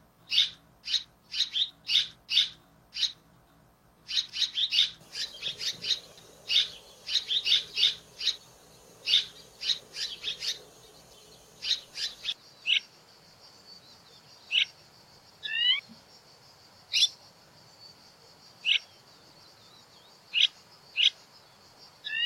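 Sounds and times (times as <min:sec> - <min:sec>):
background hiss: 0:00.0 - 0:22.2
red-rumped swallow giving scratchy chirps: 0:05.0 - 0:12.4.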